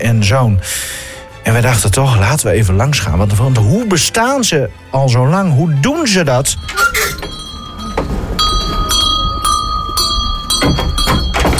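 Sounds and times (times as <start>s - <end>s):
speech: 0.0s - 7.3s
clattering in a busy room: 6.4s - 11.5s
shop door bell jingling as a hat shop door swings open in Groningen: 6.4s - 11.5s
thumps: 6.4s - 11.5s.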